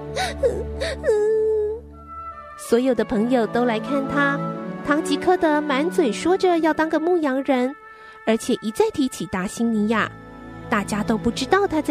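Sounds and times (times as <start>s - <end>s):
young girl crying anxiously: 0.0s - 1.8s
speech: 0.2s - 1.4s, 2.6s - 11.8s.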